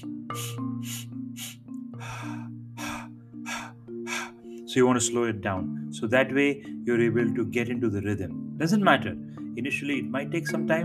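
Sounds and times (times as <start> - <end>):
person breathing during a guided breathing exercise: 0.0 - 4.7, 9.2 - 9.5
speech: 4.7 - 10.8.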